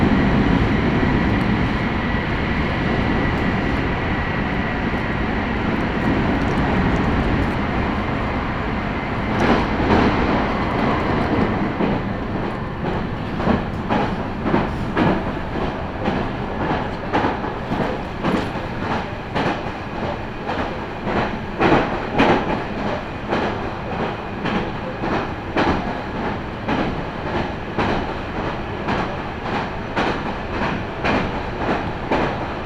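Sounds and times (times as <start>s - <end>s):
rumble inside a moving train: 0.0s - 32.6s.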